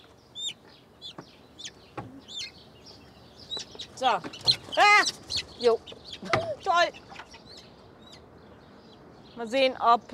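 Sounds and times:
Serama chickens giving high-pitched clucks: 0:00.0 - 0:08.3
speech: 0:04.0 - 0:07.0, 0:09.4 - 0:10.1.

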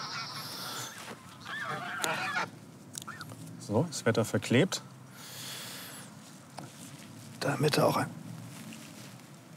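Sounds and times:
several agitated geese honking while chased by a dog outdoors: 0:00.0 - 0:03.3
speech: 0:03.7 - 0:04.9, 0:07.4 - 0:08.2.

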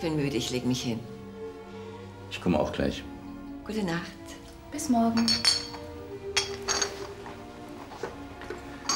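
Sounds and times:
speech: 0:00.0 - 0:01.2, 0:02.3 - 0:03.1, 0:03.7 - 0:05.6
glasses clinking together in a toast at a clinic: 0:05.0 - 0:07.4, 0:08.0 - 0:08.9.

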